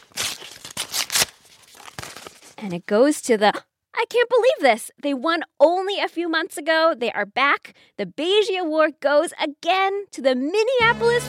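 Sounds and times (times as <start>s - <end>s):
paper envelope being torn open at an award announcement: 0.0s - 2.7s
speech: 2.6s - 11.2s.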